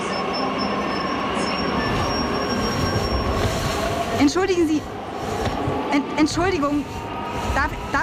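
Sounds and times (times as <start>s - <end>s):
train wheels letting out a thin high metallic squeal: 0.0s - 4.2s
train to Berlin rolling into a main railway station: 0.0s - 8.0s
speech: 4.2s - 5.0s, 5.9s - 8.0s.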